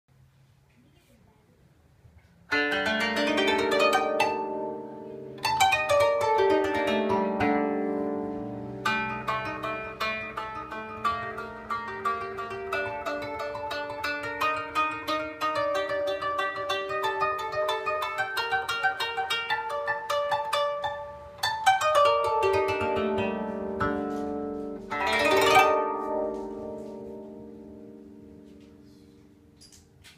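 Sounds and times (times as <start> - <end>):
Japanese koto playing: 2.5 - 29.8.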